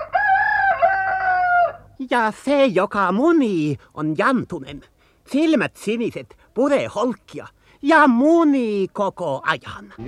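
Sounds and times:
cuckoo clock rooster crowing: 0:00.0 - 0:01.8
speech: 0:02.1 - 0:10.0.

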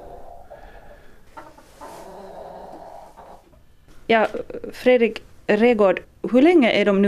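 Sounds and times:
young rooster hatched last summer clucking: 0:00.0 - 0:03.7
farmyard hum: 0:00.0 - 0:05.2
speech: 0:04.1 - 0:07.0.

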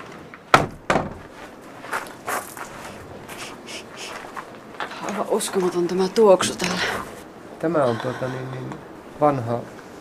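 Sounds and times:
door pushed shut and latching: 0:00.5 - 0:01.3
speech: 0:05.2 - 0:09.8.

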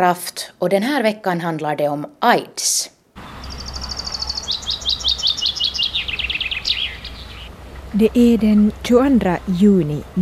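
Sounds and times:
speech: 0:00.0 - 0:03.3, 0:07.9 - 0:10.2
bird singing outdoors: 0:03.2 - 0:09.6
low hum: 0:03.2 - 0:10.2.

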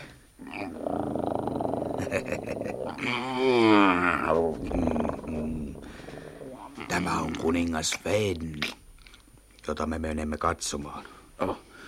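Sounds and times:
bear growling and roaring: 0:00.4 - 0:07.8
speech: 0:02.0 - 0:05.7, 0:07.0 - 0:08.8, 0:09.7 - 0:11.7.

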